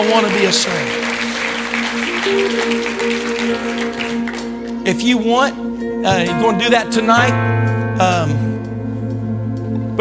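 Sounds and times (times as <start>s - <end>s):
audience clapping: 0.0s - 4.8s
speech: 0.0s - 8.5s
sustained keyboard or organ tones: 0.0s - 9.9s.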